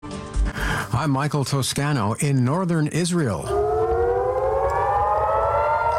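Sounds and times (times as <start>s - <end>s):
speech: 1.0s - 3.7s
civil defense sirens wailing at night in northern Israel: 3.4s - 5.9s.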